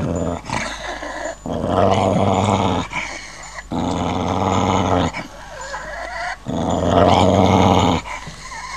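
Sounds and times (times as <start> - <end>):
dog giving a harsh roaring growl: 0.0 - 8.7.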